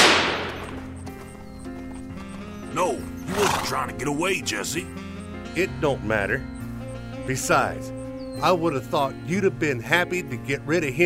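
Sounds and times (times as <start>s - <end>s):
gunshot: 0.0s - 0.8s
speech: 3.7s - 6.5s, 7.2s - 11.0s.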